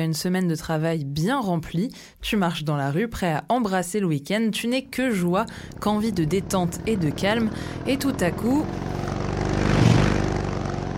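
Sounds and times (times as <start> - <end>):
speech: 0.0 - 9.0
motorcycle engine roaring past: 4.8 - 10.9.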